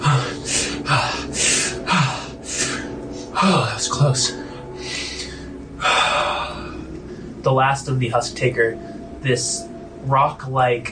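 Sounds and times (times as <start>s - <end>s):
man lying on his back gasping heavily in a warm, fetid cavern: 0.0s - 7.5s
speech: 3.4s - 4.4s, 7.4s - 10.9s.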